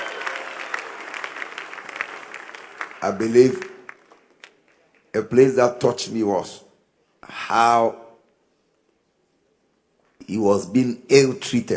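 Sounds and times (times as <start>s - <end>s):
audience clapping hands in praise: 0.0s - 5.3s
speech: 3.0s - 3.7s, 5.2s - 6.6s, 7.2s - 8.0s, 10.3s - 11.7s.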